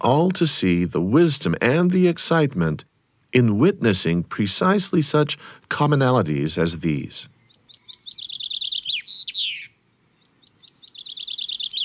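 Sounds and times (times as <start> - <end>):
speech: 0.0 - 7.3
chaffinch singing: 5.7 - 11.8.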